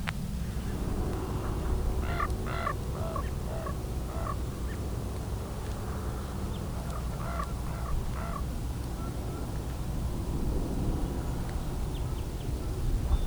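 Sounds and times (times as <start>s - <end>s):
steady low rumble of background noise: 0.0s - 13.2s
common raven calls: 0.4s - 9.8s.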